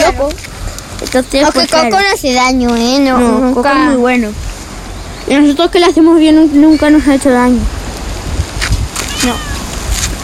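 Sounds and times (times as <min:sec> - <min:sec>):
speech: 0:01.1 - 0:04.5, 0:05.2 - 0:07.8, 0:09.2 - 0:09.5
female cat meowing: 0:09.0 - 0:09.8.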